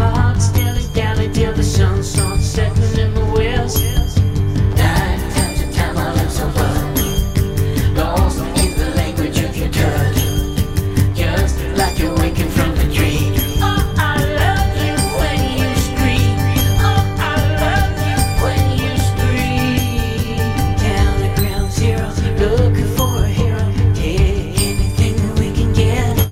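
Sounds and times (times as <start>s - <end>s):
bright chiming guitars: 0.0s - 26.3s
driving bass: 0.0s - 26.3s
rock lead vocal line: 0.0s - 26.3s.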